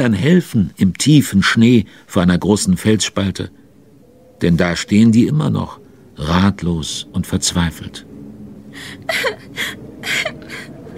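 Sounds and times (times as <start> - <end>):
speech: 0.0 - 3.6, 4.4 - 8.1, 8.8 - 10.3
child whimpering and crying in short sobbing bursts: 8.8 - 10.9.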